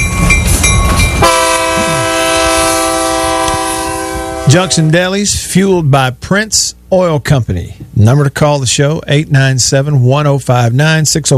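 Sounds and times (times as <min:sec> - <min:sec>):
train horn blaring: 0:00.0 - 0:05.0
rumbling rail noise: 0:00.0 - 0:05.6
speech: 0:04.5 - 0:11.3.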